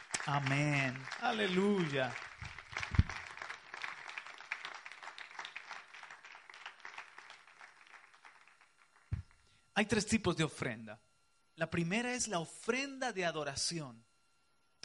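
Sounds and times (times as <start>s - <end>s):
church audience applauding the Lord: 0.0s - 9.2s
speech: 0.2s - 2.3s, 9.8s - 14.1s
low thumps: 2.4s - 3.2s.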